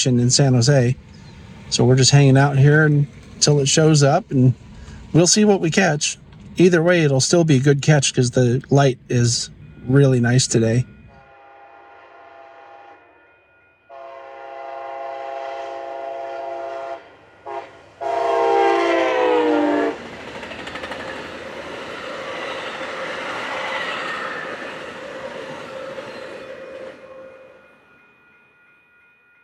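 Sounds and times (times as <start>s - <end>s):
speech: 0.0s - 11.0s
train cars rolling and rattling near a station in San Jose: 0.0s - 11.2s, 15.2s - 27.4s
train horn blasts near a station in San Jose: 11.0s - 13.3s, 13.9s - 20.0s, 26.4s - 27.7s.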